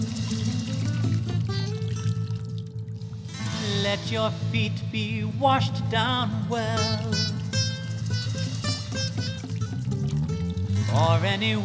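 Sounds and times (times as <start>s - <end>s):
water pouring steadily into a container: 0.0s - 3.7s, 6.8s - 11.2s
speech: 3.9s - 7.3s, 10.9s - 11.6s.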